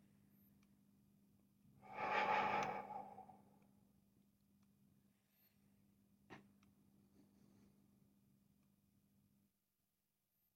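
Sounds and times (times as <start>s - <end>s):
slow deep breath out: 1.9s - 3.4s.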